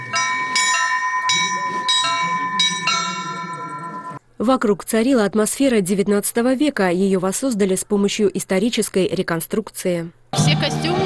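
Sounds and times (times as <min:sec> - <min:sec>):
cathedral bells rung by members of the public during a celebration: 0:00.0 - 0:04.2
faint murmur of people: 0:01.3 - 0:04.2
speech: 0:04.4 - 0:11.0.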